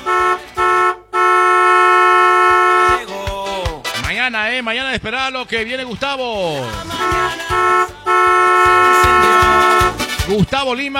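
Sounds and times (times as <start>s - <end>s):
car horn honking: 0.0s - 3.2s, 6.8s - 10.2s
speech: 4.6s - 9.7s, 10.3s - 10.9s.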